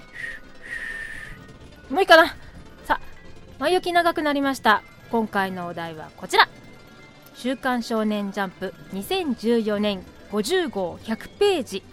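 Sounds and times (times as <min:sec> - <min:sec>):
clumsy breathy whistle: 0:00.0 - 0:01.5
speech: 0:01.9 - 0:03.0, 0:03.6 - 0:06.6, 0:07.4 - 0:11.9.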